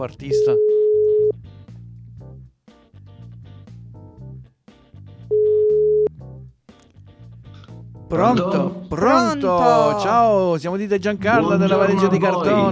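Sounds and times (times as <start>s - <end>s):
speech: 0.0s - 0.8s, 8.1s - 12.7s
rhythmic music: 0.0s - 12.7s
telephone line tone while placing a call: 0.3s - 1.3s, 5.3s - 6.1s.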